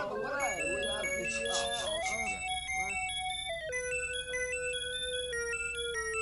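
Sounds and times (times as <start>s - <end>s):
voices murmuring: 0.0s - 4.0s
music box playing a bright tinkling melody: 0.0s - 6.2s.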